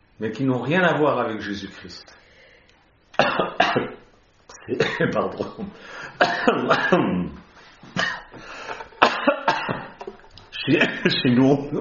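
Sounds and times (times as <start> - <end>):
speech: 0.2 - 2.2, 4.7 - 7.4, 10.6 - 11.7
person coughing after swallowing the wrong way: 3.2 - 4.0, 4.6 - 5.2, 6.2 - 7.2, 7.9 - 10.1.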